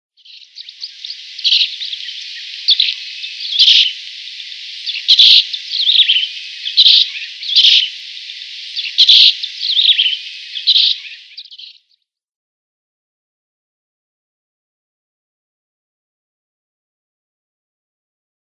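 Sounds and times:
plain martin song: 0:00.2 - 0:12.0.

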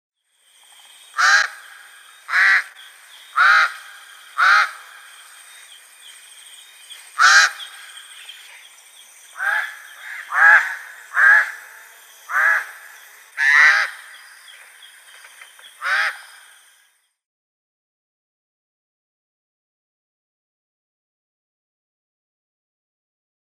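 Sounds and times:
Pied Crow: 0:01.2 - 0:02.7, 0:03.3 - 0:05.0, 0:07.2 - 0:08.0, 0:09.4 - 0:11.7, 0:12.3 - 0:12.8, 0:13.4 - 0:14.1, 0:15.8 - 0:16.6.

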